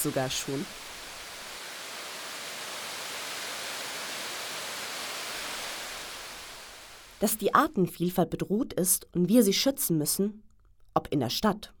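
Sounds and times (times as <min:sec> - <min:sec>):
speech: 0:00.0 - 0:01.0, 0:07.2 - 0:11.7
water rushing over a weir on the Leine river: 0:00.0 - 0:07.2.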